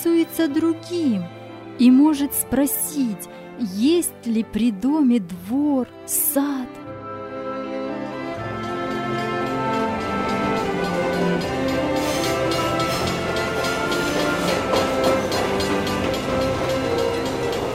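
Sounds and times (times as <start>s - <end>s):
speech: 0.1s - 6.9s
train wheels clickety-clack on rails: 8.3s - 17.7s.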